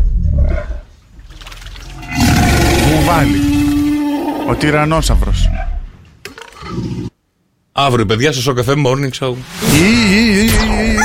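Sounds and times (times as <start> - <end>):
lion roaring: 1.9 - 5.9, 6.6 - 7.2
speech: 3.2 - 3.5, 4.5 - 5.6, 7.8 - 11.0.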